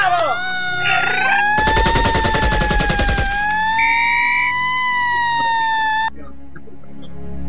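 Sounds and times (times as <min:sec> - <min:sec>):
ambulance siren wailing: 0:00.2 - 0:06.1
machine-gun fire: 0:01.6 - 0:03.4.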